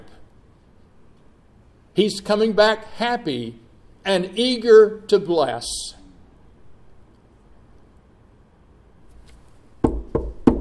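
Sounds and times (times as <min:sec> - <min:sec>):
speech: 0:02.0 - 0:06.0
firm knocks on a wooden door: 0:09.8 - 0:10.5.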